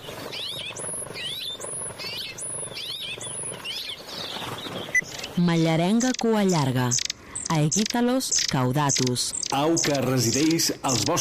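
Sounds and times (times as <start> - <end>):
rock sparrow Petronia petronia singing: 0.0 - 11.1
speech: 5.4 - 11.1
steady hiss: 9.2 - 11.1.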